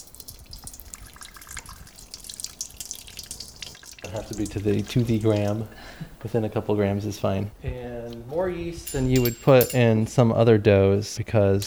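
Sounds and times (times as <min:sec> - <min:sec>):
water pouring into a container for making a yeast dough: 0:00.0 - 0:06.2
speech: 0:04.1 - 0:11.6.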